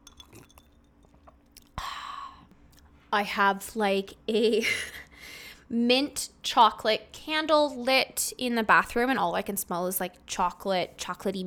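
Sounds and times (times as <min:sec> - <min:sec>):
clink of glass: 0:00.0 - 0:01.1
person sipping a drink from a glass with soft slurps: 0:00.0 - 0:02.9
speech: 0:03.1 - 0:05.0, 0:05.7 - 0:11.4.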